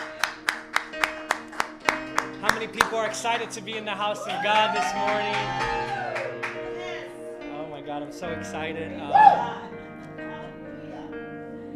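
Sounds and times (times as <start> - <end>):
audience clapping together in a steady even rhythm: 0.0 - 6.9
speech: 2.6 - 6.0, 8.0 - 9.8.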